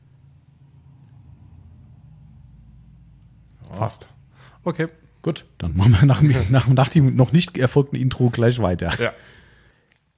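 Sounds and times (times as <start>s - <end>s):
car engine rumbling as a customer arrives: 0.0s - 5.2s
speech: 3.7s - 9.4s.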